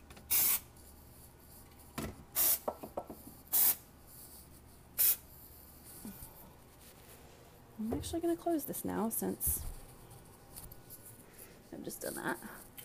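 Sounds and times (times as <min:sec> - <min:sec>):
aerosol spray can spraying in hissing bursts: 0:00.3 - 0:00.7, 0:02.3 - 0:02.8, 0:03.5 - 0:03.8, 0:05.0 - 0:05.2
speech: 0:07.8 - 0:09.7, 0:11.8 - 0:12.7.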